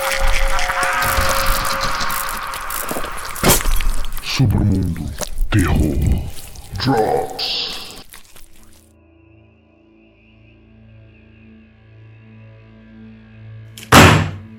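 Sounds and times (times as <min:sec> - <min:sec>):
low eerie droning hum: 0:00.0 - 0:06.8
speech: 0:04.4 - 0:07.6.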